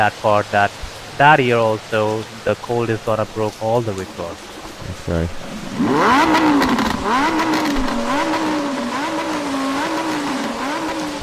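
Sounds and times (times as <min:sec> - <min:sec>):
speech: 0:00.0 - 0:07.5
Hayabusa engine revving through the exhaust: 0:05.4 - 0:11.2.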